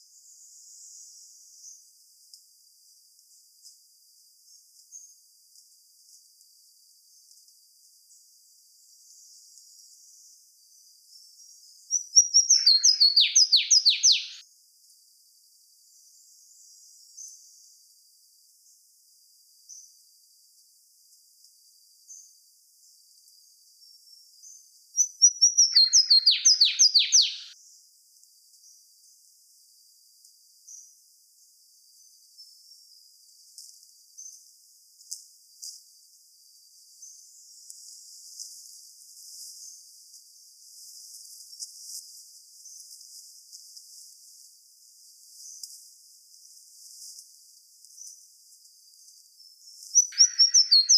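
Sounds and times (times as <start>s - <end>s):
Canario do mato bird calling: 12.4s - 14.4s, 25.5s - 27.5s, 50.0s - 50.9s.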